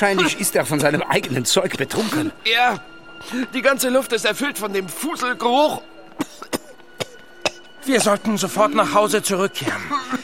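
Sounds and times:
speech: 0:00.0 - 0:05.9, 0:07.9 - 0:10.2
man coughing: 0:06.2 - 0:08.2, 0:09.6 - 0:10.2.

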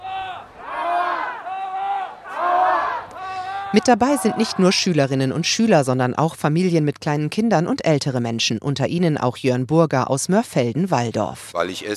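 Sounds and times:
crowd of demonstrators chanting slogans at climate protest: 0:00.0 - 0:05.2
speech: 0:03.7 - 0:11.9.

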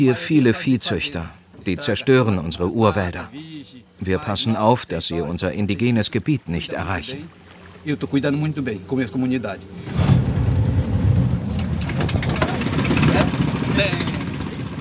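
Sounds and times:
speech: 0:00.0 - 0:10.2
wooden boat motor starting and rumbling: 0:05.3 - 0:14.7.

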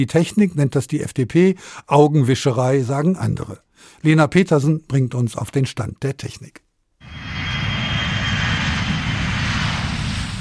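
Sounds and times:
speech: 0:00.0 - 0:06.6
airplane engine roar: 0:07.0 - 0:10.3.

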